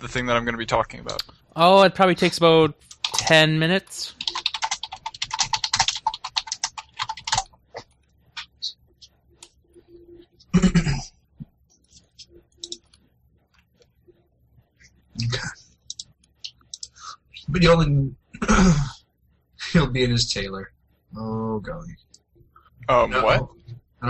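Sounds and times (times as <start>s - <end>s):
speech: 0.0s - 4.2s, 17.5s - 19.0s, 19.7s - 22.0s, 22.9s - 24.0s
computer keyboard typing during a web search: 2.8s - 3.4s, 4.1s - 10.0s, 11.8s - 13.0s, 15.2s - 17.0s.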